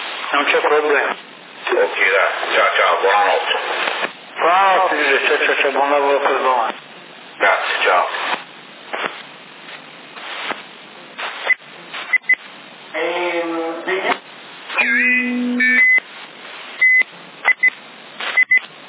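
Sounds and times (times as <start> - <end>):
bursts of band-limited CB radio noise: 0.0 - 18.8
voices talking over a CB radio transmission: 0.2 - 9.2, 12.9 - 16.0
speech: 0.3 - 6.8, 7.4 - 8.3
short high electronic beeps on a CB radio channel: 14.8 - 16.0.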